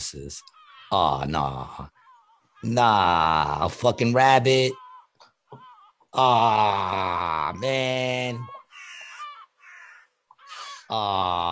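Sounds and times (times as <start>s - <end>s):
speech: 0.0s - 2.0s, 2.6s - 4.8s, 5.5s - 8.5s, 10.9s - 11.5s
seagull squawking and crying in a played video: 8.4s - 10.8s.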